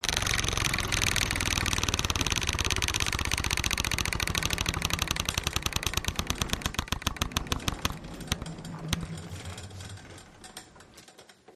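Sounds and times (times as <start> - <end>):
pyramid spin wheel spinning: 0.0 - 10.9.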